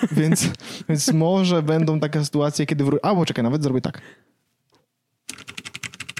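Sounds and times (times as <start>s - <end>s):
speech: 0.0s - 4.3s
typing on a computer keyboard: 5.3s - 6.1s.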